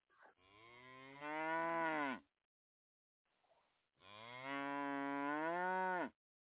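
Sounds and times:
upset cow mooing: 0.5s - 2.2s, 4.1s - 6.2s.

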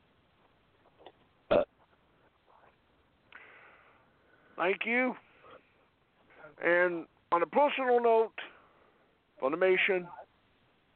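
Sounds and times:
single short loud belch: 1.5s - 1.7s
speech: 4.6s - 5.2s, 6.6s - 8.4s, 9.4s - 10.2s.

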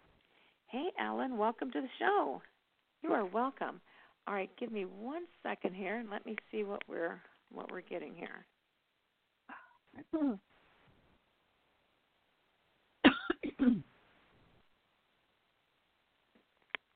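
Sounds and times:
speech: 0.7s - 8.5s, 10.0s - 10.5s, 13.6s - 13.9s
two people coughing during a phone call: 13.1s - 13.8s.

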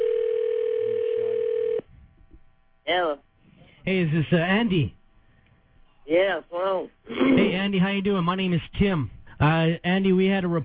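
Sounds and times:
telephone ringing tone on the line as a call is placed: 0.0s - 1.8s
speech: 2.9s - 5.0s, 6.1s - 10.6s.

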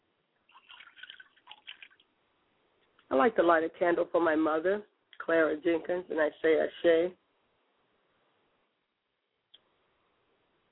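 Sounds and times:
small stream of water poured as a libation: 0.5s - 2.1s
speech: 3.1s - 7.2s.

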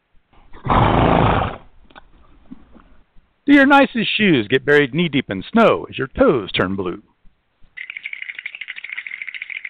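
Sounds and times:
horse neighing: 0.5s - 1.7s
speech: 3.5s - 7.1s.

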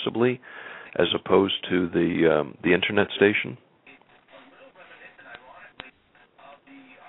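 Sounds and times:
speech: 0.0s - 3.6s
hissing crackling static on a narrowband phone line: 3.8s - 7.0s.

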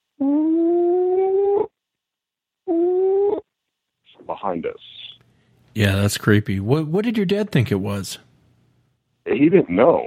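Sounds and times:
person's voice imitating an animal howl: 0.2s - 1.7s, 2.7s - 3.4s
speech: 4.4s - 5.0s, 5.8s - 8.3s, 9.4s - 10.0s.

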